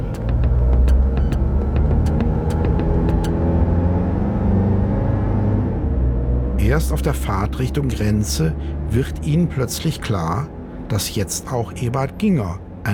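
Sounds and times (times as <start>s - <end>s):
sharp mechanical clicks and ticks of a car: 0.0s - 3.5s
car engine rumbling as it drives off in first gear: 0.0s - 12.9s
speech: 6.8s - 12.9s.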